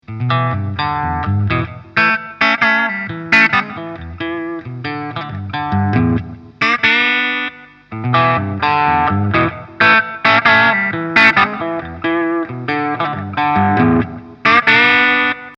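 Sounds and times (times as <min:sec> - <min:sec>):
clean guitar tone through effects: 0:00.0 - 0:15.5.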